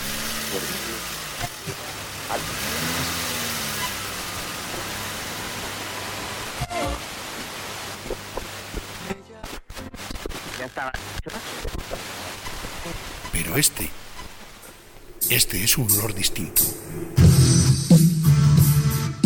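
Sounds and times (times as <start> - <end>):
car engine running: 0.0 - 6.6, 12.5 - 19.1
road and cabin noise: 0.0 - 7.8, 12.3 - 18.8
speech: 0.5 - 2.8, 10.8 - 11.6, 13.6 - 14.1, 15.3 - 17.3.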